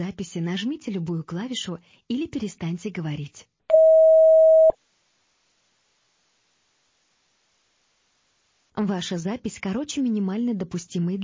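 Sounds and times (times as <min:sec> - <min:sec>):
speech: 0:00.0 - 0:03.5, 0:08.8 - 0:11.2
answering machine beep before recording: 0:03.7 - 0:04.8.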